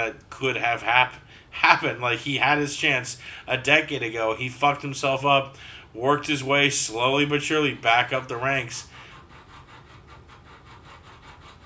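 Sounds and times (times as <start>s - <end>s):
speech: 0.0s - 9.0s
rhythmic sawing-like rasp from an air vent: 6.3s - 11.6s.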